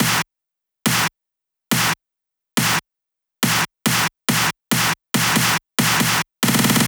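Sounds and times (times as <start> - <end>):
snare drum beat: 0.0 - 0.2, 3.5 - 6.8.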